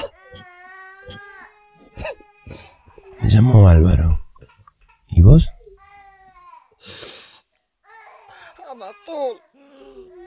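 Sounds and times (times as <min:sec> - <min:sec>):
young children sobbing and whimpering: 0:00.0 - 0:03.4, 0:04.4 - 0:06.8, 0:07.8 - 0:10.2
speech: 0:03.3 - 0:04.2, 0:05.3 - 0:05.5.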